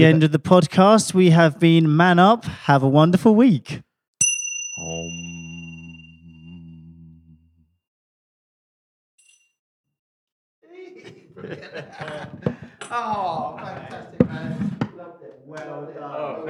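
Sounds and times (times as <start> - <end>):
speech: 0.0 - 3.9, 4.8 - 5.4, 11.4 - 14.8, 15.5 - 16.4
faint clink: 4.2 - 5.2, 9.2 - 9.6
person humming a low steady tune: 4.8 - 7.7
people laughing: 10.7 - 16.4.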